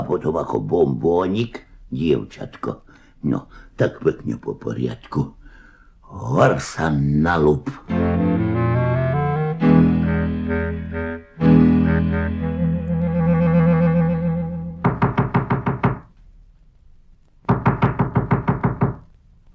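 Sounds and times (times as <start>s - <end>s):
speech: 0.0s - 5.4s, 6.1s - 8.5s
sustained tonal musical passage: 7.9s - 15.0s
knocking on a door: 14.8s - 16.1s, 17.5s - 19.0s.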